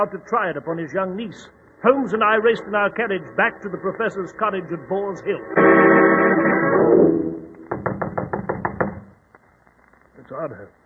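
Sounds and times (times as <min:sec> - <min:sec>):
speech: 0:00.0 - 0:07.0, 0:10.3 - 0:10.8
knocking on a wooden cottage door: 0:07.7 - 0:09.2.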